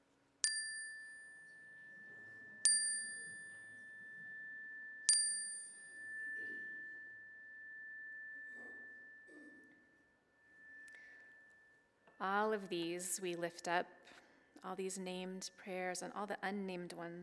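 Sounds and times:
bright metallic chime ringing during a prayer: 0:00.4 - 0:12.2
speech: 0:12.2 - 0:17.2.

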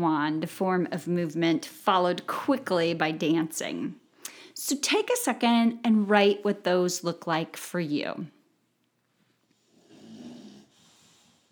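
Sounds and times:
speech: 0:00.0 - 0:04.0, 0:04.6 - 0:08.4
animal breathing quietly: 0:09.6 - 0:11.5
animal snoring asleep on a dining room floor: 0:09.7 - 0:10.9.

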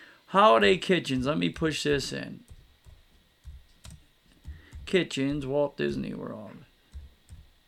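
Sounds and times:
speech: 0:00.3 - 0:02.5, 0:04.9 - 0:06.7
typing on a computer keyboard: 0:00.7 - 0:06.0, 0:06.9 - 0:07.5.

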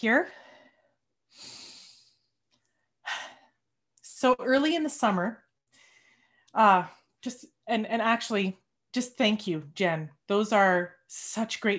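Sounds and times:
speech: 0:00.0 - 0:00.4, 0:01.3 - 0:01.6, 0:04.2 - 0:05.4, 0:06.5 - 0:11.7
person taking a deep breath during a guided practice on grief: 0:00.3 - 0:02.3.

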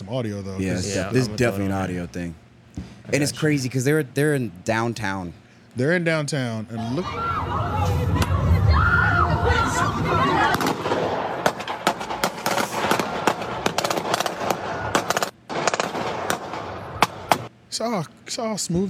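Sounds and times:
speech: 0:00.1 - 0:08.1, 0:17.8 - 0:18.8
noisy crowd voices in downtown Chicago: 0:06.8 - 0:13.7
automatic gunfire fired into a crowd in downtown Chicago: 0:10.4 - 0:17.5.

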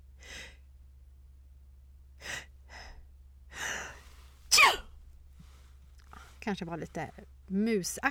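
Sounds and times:
person imitating a sneeze: 0:04.5 - 0:04.9
speech: 0:06.5 - 0:08.1.

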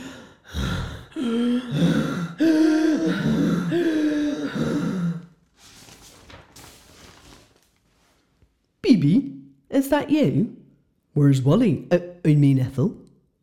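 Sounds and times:
heavy breathing and voiced gasps in a pitch-black art room: 0:00.0 - 0:05.4
speech: 0:08.9 - 0:10.6, 0:11.2 - 0:13.0.

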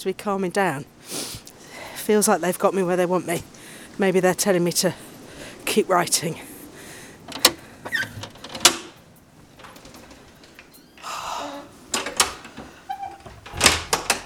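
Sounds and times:
speech: 0:00.0 - 0:01.3, 0:02.1 - 0:05.1, 0:05.8 - 0:06.5
rustling: 0:03.4 - 0:14.2
hall door clicks and knocks: 0:07.3 - 0:09.0, 0:09.6 - 0:14.2.

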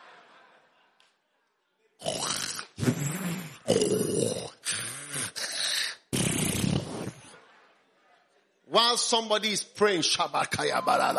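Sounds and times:
laughter: 0:00.0 - 0:01.9, 0:07.1 - 0:08.4, 0:10.6 - 0:11.1
voice imitating loud snoring with grunting snorts: 0:02.0 - 0:07.3
speech: 0:09.0 - 0:11.1.

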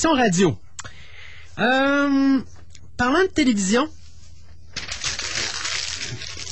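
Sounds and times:
speech: 0:00.0 - 0:00.6, 0:01.6 - 0:04.0
sheet of paper being crumpled: 0:04.7 - 0:06.4.

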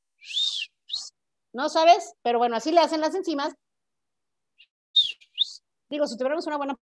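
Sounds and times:
whistle sound effect: 0:00.2 - 0:01.1, 0:05.0 - 0:05.6
speech: 0:01.5 - 0:03.6, 0:05.9 - 0:06.8.

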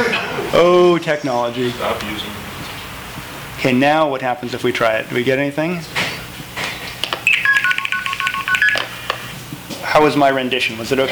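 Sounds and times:
speech: 0:00.5 - 0:02.5, 0:03.6 - 0:06.0, 0:10.0 - 0:11.0
telephone dialing tones from placing a long-distance call: 0:07.2 - 0:09.2.

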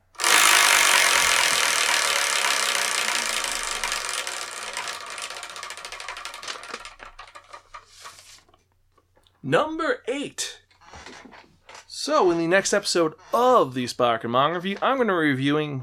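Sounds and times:
prize wheel being spun: 0:00.0 - 0:08.0
speech: 0:09.5 - 0:10.6, 0:12.0 - 0:15.8.

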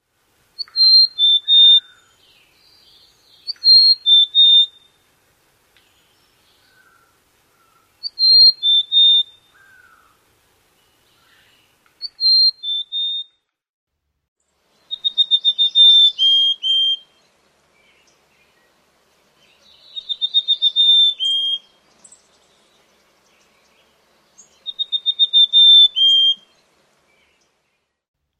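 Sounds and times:
mountain chickadee song: 0:00.6 - 0:02.0, 0:03.4 - 0:04.9, 0:08.0 - 0:09.4, 0:12.0 - 0:13.4, 0:14.8 - 0:17.2, 0:19.7 - 0:21.8, 0:24.6 - 0:26.6.

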